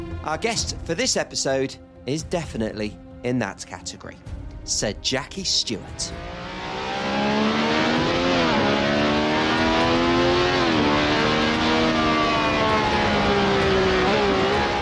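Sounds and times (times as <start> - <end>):
speech: 0.3 - 6.4
Formula One race car engine revving through gear changes: 5.8 - 14.8.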